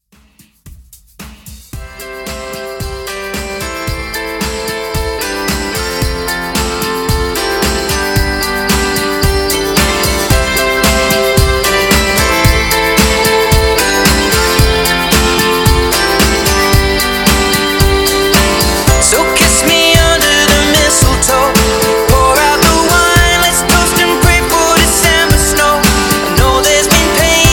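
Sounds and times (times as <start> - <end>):
uptempo Christmas drum beat: 0.0 - 27.5.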